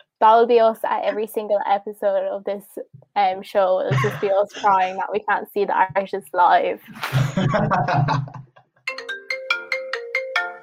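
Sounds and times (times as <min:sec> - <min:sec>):
speech: 0:00.2 - 0:08.4
laughter: 0:03.9 - 0:05.0, 0:07.0 - 0:08.6
phone melodic ringtone: 0:08.9 - 0:10.6.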